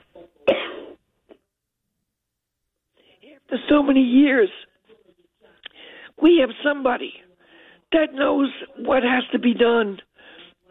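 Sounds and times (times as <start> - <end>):
harsh throat clearing: 0.4 - 1.4
speech: 3.5 - 4.7, 6.2 - 7.2, 7.9 - 10.1.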